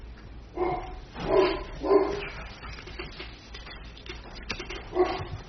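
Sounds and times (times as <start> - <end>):
dog barking excitedly: 0.6 - 2.4, 4.9 - 5.3.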